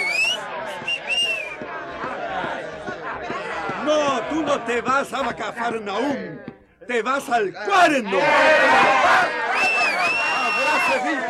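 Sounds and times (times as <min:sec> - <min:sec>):
crowd jeering with shrill whistles in protest: 0:00.0 - 0:01.6, 0:08.7 - 0:11.2
noisy hubbub of voices: 0:00.0 - 0:11.2
speech: 0:04.3 - 0:09.5, 0:10.8 - 0:11.2.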